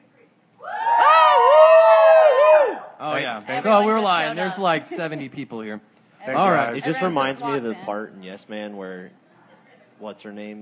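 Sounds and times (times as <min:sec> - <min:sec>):
a few voices cheering in imitation of a crowd roar: 0:00.6 - 0:03.0
speech: 0:03.6 - 0:09.2, 0:10.0 - 0:10.6.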